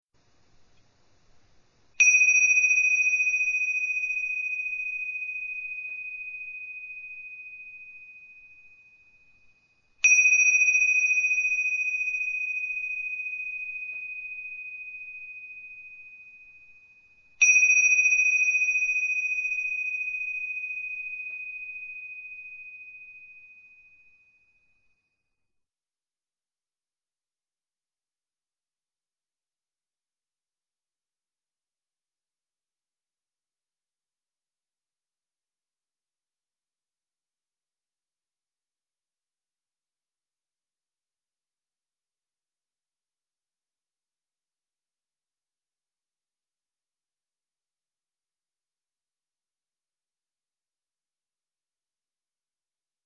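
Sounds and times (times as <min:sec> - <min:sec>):
bells for seated meditation: 0:02.0 - 0:24.4.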